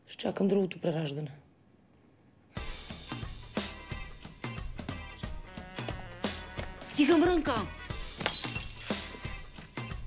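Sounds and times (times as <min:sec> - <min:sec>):
speech: 0:00.1 - 0:01.4, 0:07.0 - 0:07.8
glass cup shattering: 0:08.1 - 0:09.5
tumbling glass shards clinking: 0:08.2 - 0:09.5.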